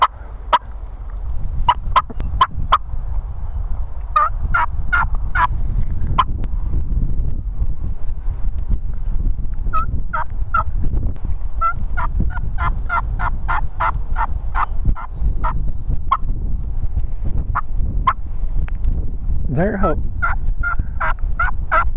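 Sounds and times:
turkeys gobbling while fighting their way into a churchyard at daylight: 0:00.0 - 0:02.9, 0:04.1 - 0:05.5, 0:20.2 - 0:21.8
steady low rumble of wind noise: 0:00.0 - 0:21.9.

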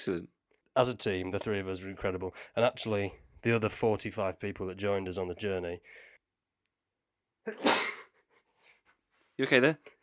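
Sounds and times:
speech: 0:00.0 - 0:06.1, 0:07.4 - 0:07.9, 0:09.4 - 0:10.0
intake of breath: 0:05.8 - 0:06.2
person sneezing: 0:07.5 - 0:08.2.

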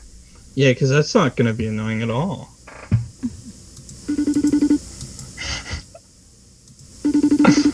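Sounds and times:
speech: 0:00.6 - 0:02.6
phone call ringback tone: 0:04.1 - 0:04.8, 0:07.0 - 0:07.7.

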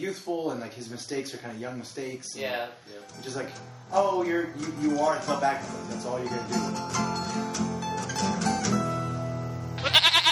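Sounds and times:
speech: 0:00.0 - 0:08.5
goats bleating: 0:09.8 - 0:10.3.

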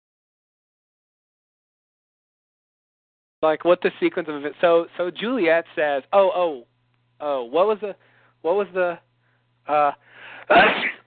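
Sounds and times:
speech: 0:03.4 - 0:11.0
person sneezing: 0:10.4 - 0:11.0.

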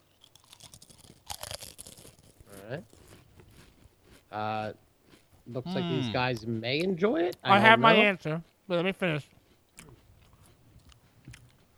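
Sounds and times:
Pringles potato chip crunching: 0:00.0 - 0:05.5, 0:09.7 - 0:11.7
chewing: 0:00.0 - 0:06.5, 0:09.5 - 0:11.7
speech: 0:02.7 - 0:03.0, 0:04.3 - 0:04.8, 0:05.5 - 0:09.4.

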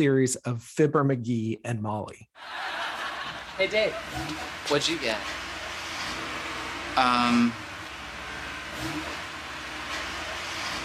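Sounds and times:
speech: 0:00.0 - 0:03.0, 0:03.6 - 0:05.4, 0:07.0 - 0:07.6, 0:08.8 - 0:09.2
laughter: 0:02.4 - 0:04.2
sports car engine revving: 0:03.3 - 0:10.8.

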